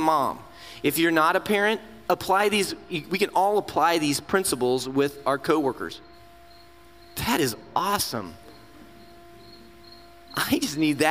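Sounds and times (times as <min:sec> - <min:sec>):
speech: 0:00.0 - 0:06.1, 0:07.2 - 0:08.4, 0:10.4 - 0:11.0
soft hum: 0:00.0 - 0:11.0
crickets chirping: 0:05.6 - 0:11.0.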